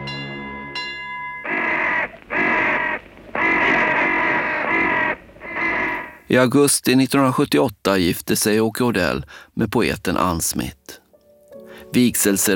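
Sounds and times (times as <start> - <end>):
steady dull tonal signal: 0.0 - 3.4
crows giving loud harsh drawn-out caws: 1.4 - 6.3
speech: 6.3 - 11.0, 11.9 - 12.5.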